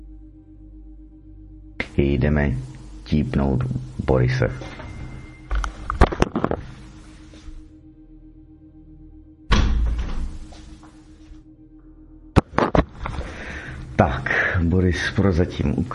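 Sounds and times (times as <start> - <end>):
steady low hum: 0.0 - 15.9
speech: 2.0 - 4.8, 14.0 - 15.9
door slamming shut: 9.5 - 10.7.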